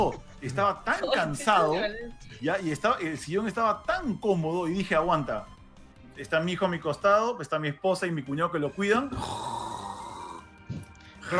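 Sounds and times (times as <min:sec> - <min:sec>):
laughter: 0:00.0 - 0:03.0
speech: 0:00.0 - 0:05.6, 0:06.2 - 0:09.5
person imitating snoring: 0:09.1 - 0:10.5
short breathy snort: 0:09.1 - 0:11.2.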